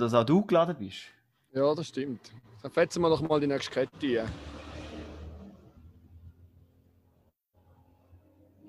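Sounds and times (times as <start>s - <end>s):
speech: 0.0s - 4.6s
car engine revving: 3.6s - 7.2s.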